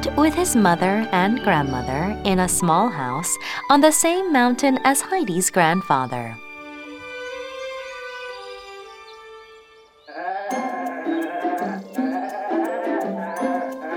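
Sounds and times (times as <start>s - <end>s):
speech: 0.0s - 6.4s
small herd of goats bleating: 10.1s - 13.9s.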